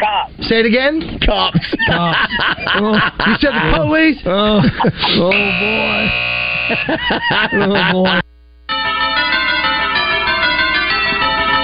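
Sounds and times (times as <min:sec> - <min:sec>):
speech: 0:00.2 - 0:08.2
laughter: 0:01.3 - 0:08.3
bright sustained bell chime from a football broadcast theme: 0:08.7 - 0:11.6.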